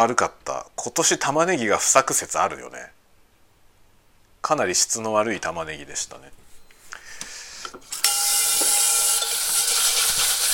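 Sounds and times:
speech: 0.0s - 3.0s, 4.4s - 6.5s
burnt residue scraped off a washed, oiled frying pan: 8.0s - 10.5s.

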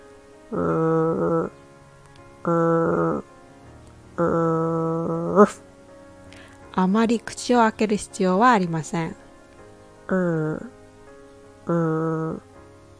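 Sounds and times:
speech: 0.5s - 0.8s, 2.4s - 2.6s, 5.4s - 5.6s, 6.8s - 9.2s, 10.1s - 10.7s, 11.7s - 12.4s
person imitating a dog's growl as an English pronunciation exercise: 0.5s - 1.6s, 2.4s - 3.3s, 4.2s - 5.6s, 10.1s - 10.7s, 11.7s - 12.5s.

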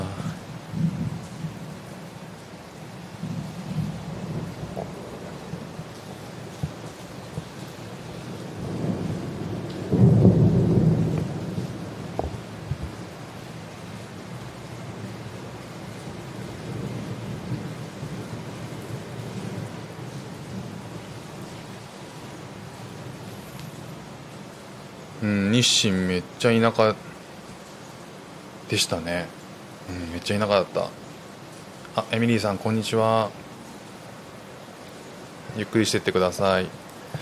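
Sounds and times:
low rumble of distant thunder: 0.0s - 1.8s, 3.2s - 13.4s
heavy rain: 0.0s - 37.1s
speech: 25.6s - 27.1s, 28.7s - 31.0s, 32.0s - 33.4s, 35.6s - 36.8s.

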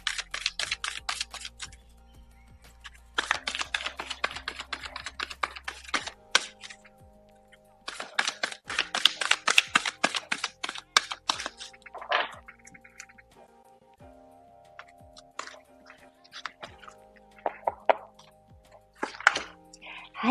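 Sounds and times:
oracle cards being shuffled and drawn: 0.0s - 1.8s, 2.7s - 13.2s, 14.8s - 19.6s.

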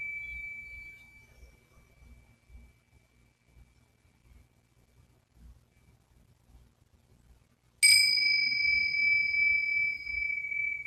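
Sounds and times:
Tibetan singing bowl in a sound healing performance in Mexico: 0.0s - 3.6s, 7.8s - 10.8s.

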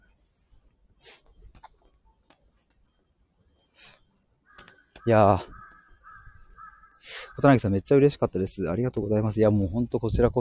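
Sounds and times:
crow cawing: 4.4s - 7.6s
speech: 5.0s - 5.6s, 7.4s - 10.3s.

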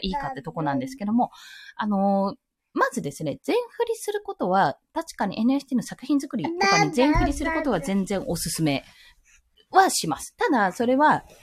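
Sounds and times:
speech: 0.0s - 9.1s, 9.7s - 11.4s
young boy vocalizing in the background: 6.5s - 8.0s.

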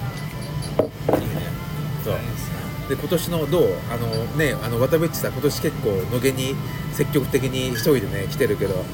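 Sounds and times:
glasses clinking in a toast: 0.1s - 1.6s
speech: 2.9s - 8.9s.

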